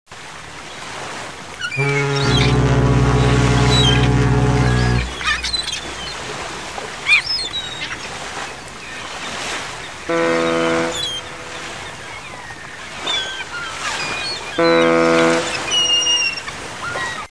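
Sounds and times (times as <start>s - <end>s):
harbour ambience: 1.7s - 7.0s, 9.9s - 16.8s.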